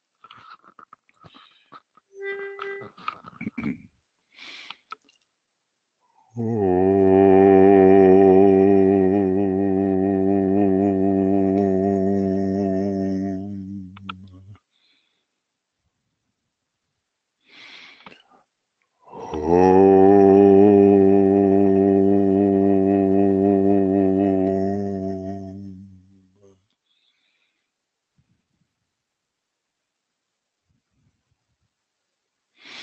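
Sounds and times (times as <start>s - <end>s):
group chanting the syllable om in unison: 6.3s - 14.2s, 19.1s - 26.1s.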